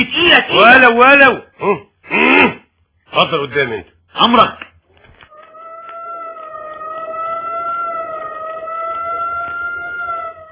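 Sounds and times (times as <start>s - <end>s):
speech: 0.5s - 2.5s, 3.1s - 4.7s
emergency-vehicle siren: 5.3s - 10.4s.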